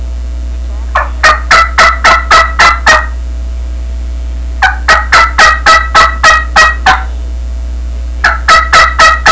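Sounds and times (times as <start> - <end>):
turkey yelps: 0.9 - 3.2, 4.6 - 7.1, 8.2 - 9.3.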